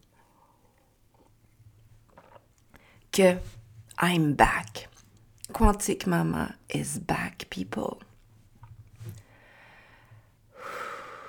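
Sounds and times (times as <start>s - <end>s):
low steady hum: 0.0s - 10.6s
person sipping and slurping coffee from a cup: 2.0s - 2.9s
speech: 3.2s - 4.9s, 5.6s - 8.1s.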